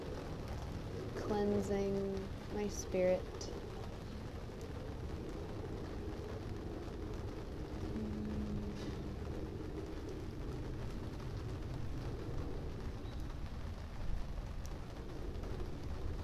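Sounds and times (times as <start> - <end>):
heavy tropical rain falling: 0.0 - 16.2
speech: 1.3 - 3.5.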